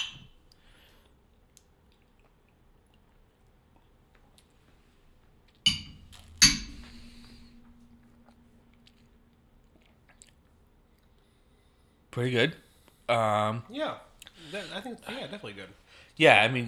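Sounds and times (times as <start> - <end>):
glasses clinking in a toast: 5.7 - 9.7
speech: 12.2 - 16.6.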